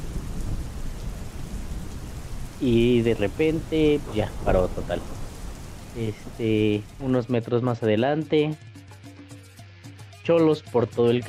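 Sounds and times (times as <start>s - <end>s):
deep continuous rumble of thunder: 0.0s - 7.4s
steady heavy rain pouring down: 0.0s - 7.4s
speech: 2.6s - 5.2s, 6.0s - 8.7s, 10.3s - 11.2s.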